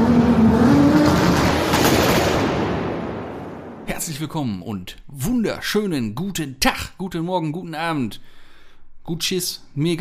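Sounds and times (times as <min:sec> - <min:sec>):
loud car engine started with the ignition and revving high: 0:00.0 - 0:03.6
speech: 0:04.2 - 0:08.4, 0:09.0 - 0:09.9.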